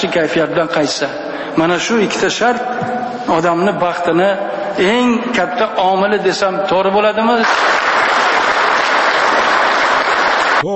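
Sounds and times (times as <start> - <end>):
speech: 0.0 - 7.8
crowd applauding: 7.4 - 10.7.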